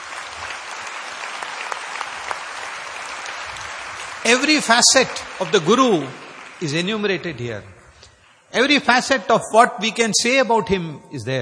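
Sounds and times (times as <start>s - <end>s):
audience applause for a singer after a devotional song: 0.0s - 8.9s
speech: 4.2s - 7.8s, 8.5s - 11.4s.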